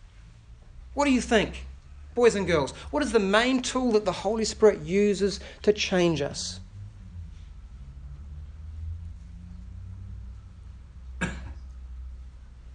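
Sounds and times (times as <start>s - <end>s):
speech: 1.0s - 6.6s
low rumble of room or traffic noise: 6.5s - 11.1s
child giving a short sharp cough: 11.2s - 11.7s.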